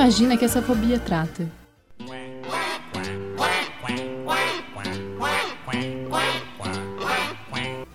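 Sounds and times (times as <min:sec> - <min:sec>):
speech: 0:00.0 - 0:02.2
duck quacking: 0:02.1 - 0:07.9.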